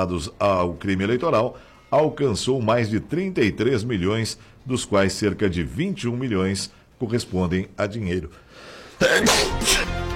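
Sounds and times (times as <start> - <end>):
low noise: 0.0 - 9.5
speech: 0.0 - 10.0
single loud sneeze with a sniffly tail: 8.9 - 10.0.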